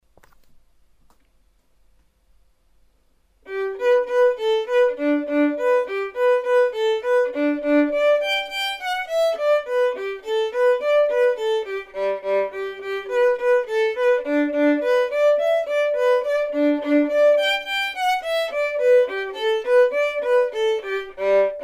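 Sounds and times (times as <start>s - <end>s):
violin performance: 3.4s - 21.6s.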